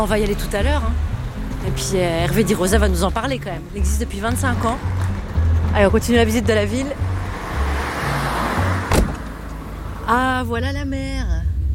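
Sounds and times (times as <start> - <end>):
speech: 0.0 - 7.1, 10.1 - 11.4
road noise inside a moving car on a seaside corniche road: 0.0 - 11.7.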